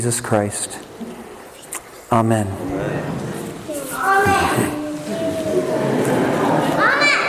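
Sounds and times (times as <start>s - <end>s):
speech: 0.0s - 0.9s, 2.1s - 3.3s, 4.2s - 7.0s
low murmur of noise in a church: 0.0s - 7.2s
small child calling out from the back pews during a church service: 3.7s - 5.4s.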